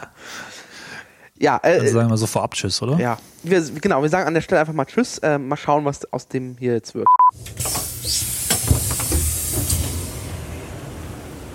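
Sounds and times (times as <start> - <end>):
speech: 1.4 - 8.3
stationary train hissing in a train station: 7.4 - 11.5.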